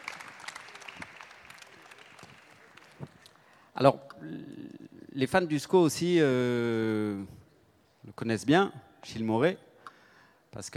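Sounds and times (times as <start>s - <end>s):
audience applause at a live debate: 0.0s - 3.2s
speech: 3.8s - 4.1s, 5.2s - 7.4s, 8.1s - 9.7s, 10.5s - 10.7s.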